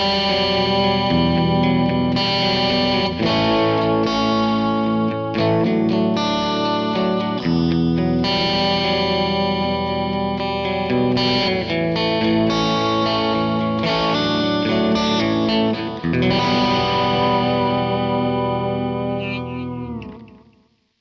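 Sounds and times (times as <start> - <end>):
modulated echoing ambient sound: 0.2 - 20.7.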